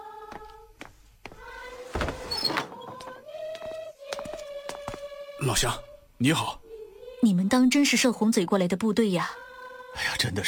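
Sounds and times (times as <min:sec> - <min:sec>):
door creaking and rattling open: 0:01.9 - 0:03.1
speech: 0:05.4 - 0:06.6, 0:07.2 - 0:09.4, 0:10.0 - 0:10.4.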